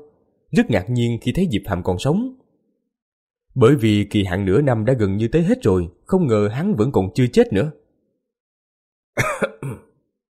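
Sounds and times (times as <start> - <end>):
speech: 0.5 - 2.4, 3.6 - 7.8
man coughing up blood with harsh wet coughs: 9.2 - 10.0.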